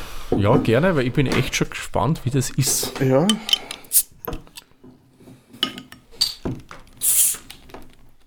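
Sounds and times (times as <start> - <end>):
speech: 0.3 - 4.1
clinks and clicks of glass handling: 3.3 - 3.9, 5.6 - 6.5
beer bottle being opened with a pop and hiss for tasting: 3.9 - 4.1, 7.0 - 7.5.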